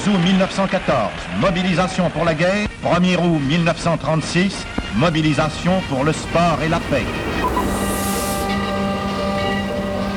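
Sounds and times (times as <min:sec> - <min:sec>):
speech: 0:00.1 - 0:07.3
train at a railway station platform: 0:04.6 - 0:10.1.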